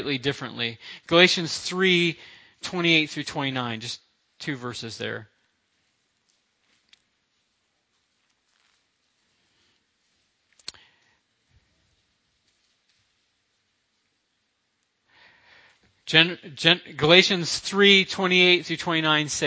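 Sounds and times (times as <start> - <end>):
speech: 0.0 - 5.3, 16.1 - 19.4
thin Bible paper pages being turned: 8.0 - 9.3.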